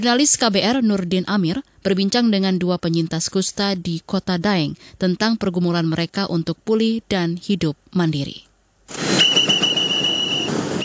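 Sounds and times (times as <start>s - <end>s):
speech: 0.0s - 9.3s
parking attendant's whistle shrieking: 8.9s - 10.8s.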